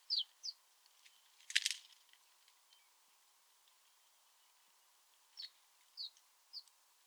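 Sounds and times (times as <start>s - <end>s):
house sparrow chirps: 0.1s - 0.6s, 5.3s - 6.7s.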